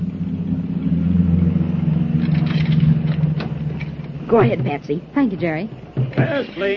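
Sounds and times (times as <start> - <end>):
large bus engine rumbling low as it pulls up: 0.0 - 6.7
speech: 4.3 - 6.7.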